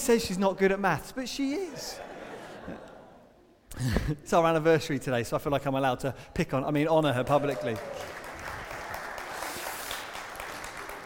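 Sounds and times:
speech: 0.0 - 2.9, 3.7 - 8.2
laughter: 1.5 - 3.6
crowd clapping: 7.1 - 11.0.

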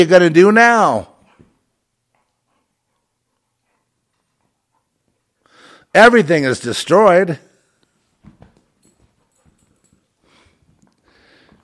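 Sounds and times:
speech: 0.0 - 1.1, 6.0 - 7.5
excited dog's paws thumping and scrabbling: 8.1 - 10.9.

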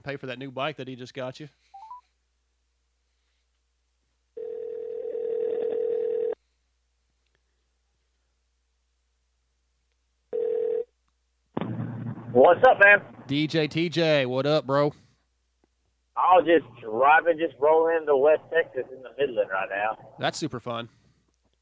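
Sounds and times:
speech: 0.0 - 1.8, 12.4 - 15.0, 16.2 - 21.0
electronic phone call ring tone: 1.8 - 2.0, 4.4 - 6.4, 10.3 - 10.9.

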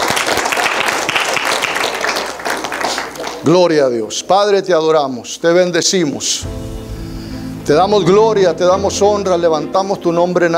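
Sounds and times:
crowd applauding: 0.0 - 3.6
speech: 3.4 - 6.8, 7.7 - 10.5.

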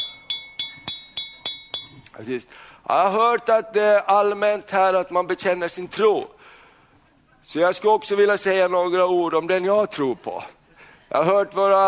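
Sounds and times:
man tapping a drinking glass in a restaurant: 0.0 - 2.1
speech: 2.2 - 6.4, 7.4 - 11.8.

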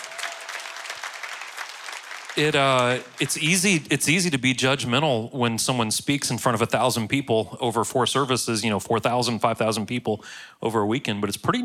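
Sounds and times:
crowd at a service clapping: 0.0 - 3.9
person speaking loudly: 2.4 - 11.6
speech: 2.4 - 11.6.

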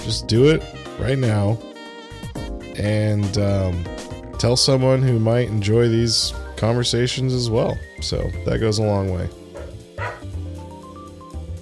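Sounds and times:
speech: 0.0 - 1.7, 2.8 - 9.4
dog barking and yipping: 9.4 - 10.3
dog whining: 9.6 - 10.3.

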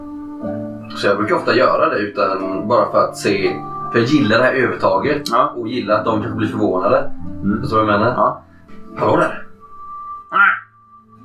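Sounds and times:
speech: 0.4 - 9.4
raven croaking: 10.2 - 10.8.

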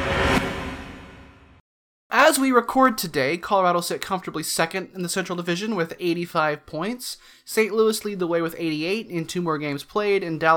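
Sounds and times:
broad airy whoosh sound effect: 0.0 - 1.3
speech: 2.2 - 10.5.

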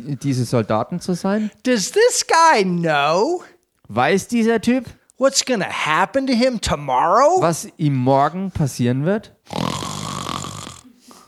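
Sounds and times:
speech: 0.0 - 9.7
voice imitating contented snoring: 9.4 - 11.2.

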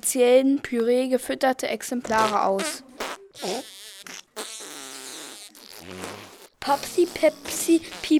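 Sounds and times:
speech: 0.1 - 4.2, 5.8 - 8.1
fart sounds from toads in a balloon basket: 2.0 - 8.1.

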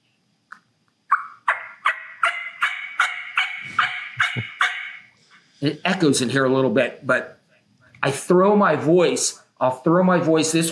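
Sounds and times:
raspy hen turkey yelps made on a latex mouth call: 1.1 - 5.1
speech: 5.6 - 7.4, 8.0 - 10.7.

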